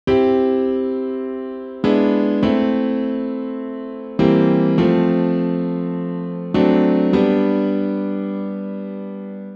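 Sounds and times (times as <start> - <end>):
secondary dominant chord progression: 0.1 - 9.5.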